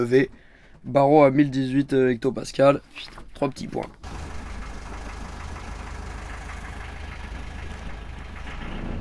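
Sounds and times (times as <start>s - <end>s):
speech: 0.0s - 4.2s
boat engine idling leaving port: 4.0s - 9.0s.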